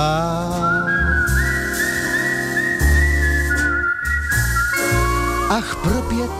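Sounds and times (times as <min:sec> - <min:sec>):
person whistling a tune: 0:00.4 - 0:06.3
speech: 0:05.5 - 0:06.3.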